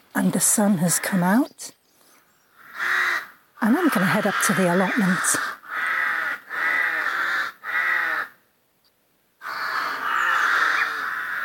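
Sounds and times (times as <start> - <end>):
speech: 0.2 - 1.8, 3.6 - 5.6
crow cawing: 2.5 - 8.4, 9.4 - 11.4.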